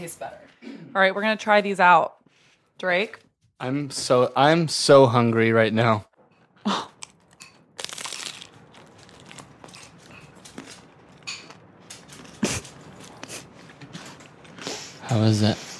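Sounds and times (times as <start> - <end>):
speech: 0.0 - 2.2, 2.8 - 6.9, 15.2 - 15.6
biting and chewing a crunchy cheesy taco with shredded lettuce: 6.9 - 14.6.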